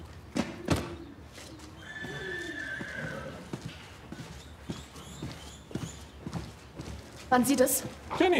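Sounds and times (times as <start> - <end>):
horse hooves clopping at walking pace: 0.1 - 8.3
horse whinnying in a drawn-out wavering call: 1.8 - 3.6
speech: 7.3 - 8.3.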